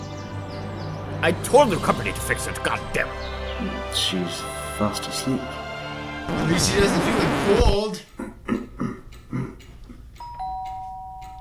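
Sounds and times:
speech: 0:01.2 - 0:05.6, 0:06.3 - 0:08.1
electronic doorbell ding tones rung from inside a house: 0:10.2 - 0:11.3.

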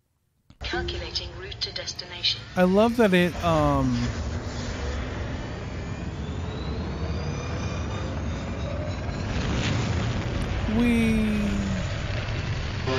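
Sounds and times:
speech: 0:00.7 - 0:04.5, 0:10.8 - 0:11.3
spaceship blasting off: 0:03.3 - 0:12.9.

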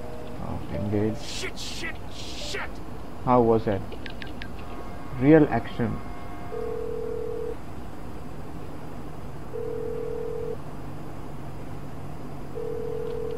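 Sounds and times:
constant hiss: 0:00.8 - 0:03.0
speech: 0:00.9 - 0:04.0, 0:05.2 - 0:06.7
phone line ringing tones: 0:06.0 - 0:07.6, 0:09.5 - 0:10.6, 0:12.5 - 0:13.3.

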